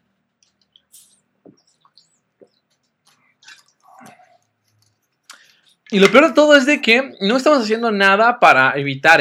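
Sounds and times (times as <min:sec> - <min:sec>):
person sipping and swallowing water: 0:02.8 - 0:05.8
speech: 0:05.9 - 0:09.1.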